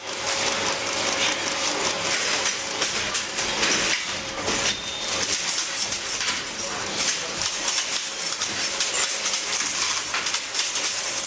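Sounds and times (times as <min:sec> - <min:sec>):
Linotype typesetting machine casting metal lines: 0:00.0 - 0:11.2.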